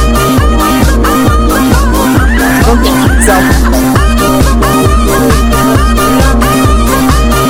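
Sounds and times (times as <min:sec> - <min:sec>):
pulsing bass: 0:00.0 - 0:07.4
woman crying out in a song: 0:02.3 - 0:06.5.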